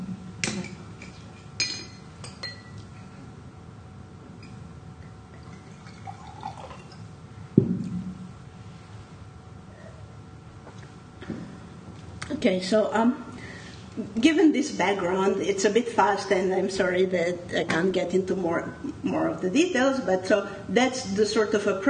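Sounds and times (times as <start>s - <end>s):
glass clinking: 1.0s - 2.8s
water poured into a glass: 5.4s - 7.0s
speech: 12.4s - 13.2s, 14.0s - 21.8s.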